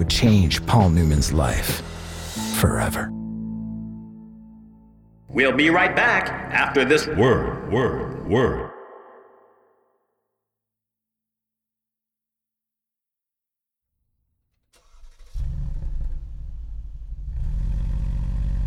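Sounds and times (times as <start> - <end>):
speech: 0.1 - 1.9, 2.6 - 3.2, 5.3 - 8.7
car engine cranking, starting and revving as it accelerates: 14.8 - 18.6.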